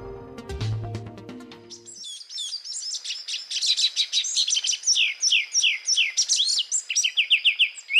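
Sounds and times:
ochre-breasted tanager singing: 0:01.7 - 0:07.9.

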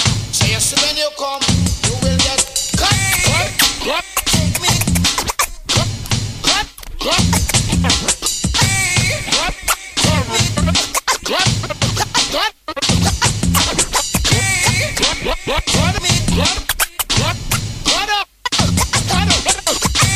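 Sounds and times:
speech: 0:00.6 - 0:01.6
loud dense scratching sounds with swooping pitch sweeps: 0:02.2 - 0:20.1.

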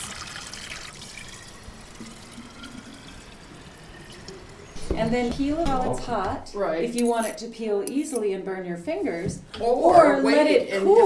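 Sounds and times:
spring water pouring out of a mountainside: 0:00.0 - 0:04.9
speech: 0:05.0 - 0:11.0.

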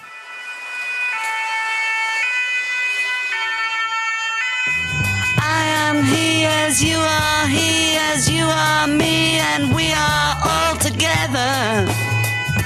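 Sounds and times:
old-style two-tone emergency siren: 0:00.0 - 0:08.2
music with a singing voice: 0:04.8 - 0:12.6
speech: 0:05.9 - 0:10.6.

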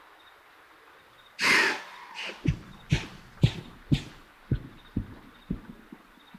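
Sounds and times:
quiet night ambience: 0:00.0 - 0:06.3
white-tailed deer alarm snort: 0:01.4 - 0:06.3
heavy rhythmic thuds of a white-tailed deer bounding away: 0:02.2 - 0:06.3.

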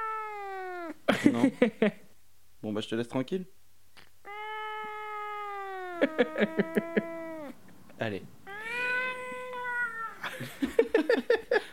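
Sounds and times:
cat meowing: 0:00.0 - 0:01.0, 0:04.2 - 0:07.6, 0:08.4 - 0:10.3
speech: 0:01.1 - 0:02.0, 0:02.6 - 0:04.1, 0:06.0 - 0:07.2, 0:08.0 - 0:08.4, 0:10.4 - 0:11.7
laughter: 0:06.0 - 0:07.3, 0:10.2 - 0:11.7.

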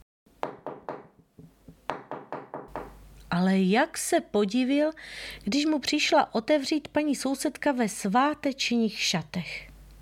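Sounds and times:
knocking on a wooden door: 0:00.4 - 0:03.0
speech: 0:03.3 - 0:09.7.

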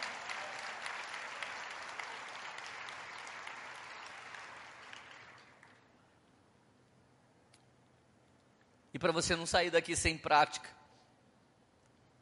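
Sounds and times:
audience applauding: 0:00.0 - 0:05.8
speech: 0:09.0 - 0:10.8.

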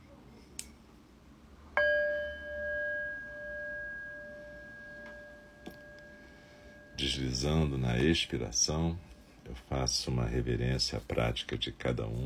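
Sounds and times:
faint room hiss: 0:00.0 - 0:12.2
meditation bell ringing: 0:01.8 - 0:09.5
speech: 0:07.0 - 0:12.2.

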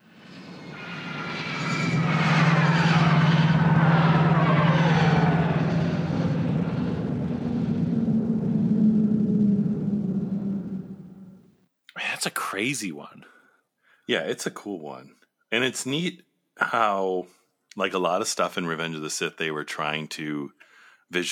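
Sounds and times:
spaceship flyby sound effect roaring whoosh: 0:00.0 - 0:11.5
speech: 0:12.6 - 0:13.4, 0:14.1 - 0:21.3.

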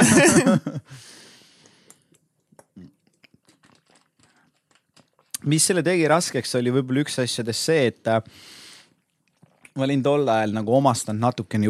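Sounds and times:
brief burst of laughter: 0:00.0 - 0:01.0
person sipping water: 0:01.7 - 0:05.4, 0:08.9 - 0:09.8
speech: 0:05.4 - 0:08.6, 0:09.8 - 0:11.6.

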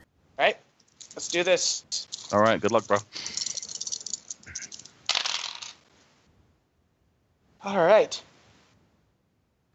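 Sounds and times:
dice, one eight-sided, rattling and clattering during a tabletop game: 0:00.9 - 0:05.8
speech: 0:01.2 - 0:03.4, 0:07.6 - 0:08.3.

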